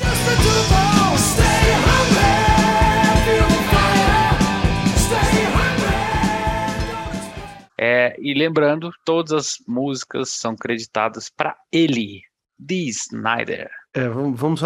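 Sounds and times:
distorted hard rock guitars: 0.0s - 7.7s
strained shouted hard rock vocal: 0.0s - 7.7s
steady pounding hard rock drums: 0.1s - 7.5s
speech: 8.2s - 14.6s.

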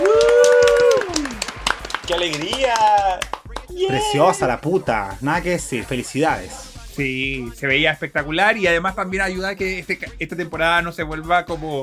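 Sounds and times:
voice holding a long bright cheering note: 0.0s - 1.5s, 2.1s - 4.7s
hands clapping in applause: 0.0s - 4.6s
speech: 2.1s - 11.8s.

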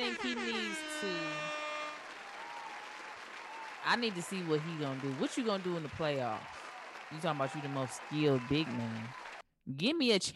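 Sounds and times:
air horn sound effect blasts: 0.0s - 2.6s
speech: 0.2s - 1.4s, 3.8s - 10.3s.

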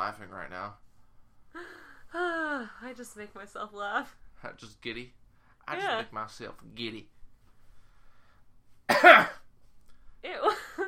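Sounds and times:
speech: 0.0s - 0.9s, 1.5s - 7.2s, 10.2s - 10.8s
rough throaty cough: 8.9s - 9.5s.

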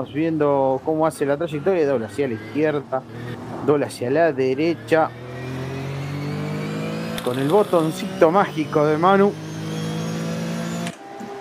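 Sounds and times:
speech: 0.0s - 5.2s, 7.2s - 9.4s
1974 Porsche RSR race car engine revving onboard during a race: 1.8s - 11.4s.

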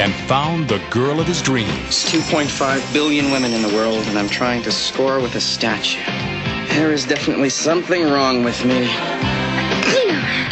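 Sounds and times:
speech: 0.0s - 9.4s
loud drawn-out voiced sneeze: 9.8s - 10.4s.

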